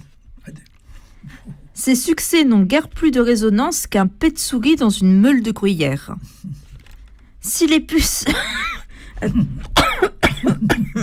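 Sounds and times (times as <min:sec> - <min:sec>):
speech: 0:01.8 - 0:06.6, 0:07.5 - 0:08.6, 0:09.2 - 0:09.7
person clearing throat: 0:08.0 - 0:11.0
person coughing: 0:08.0 - 0:11.0.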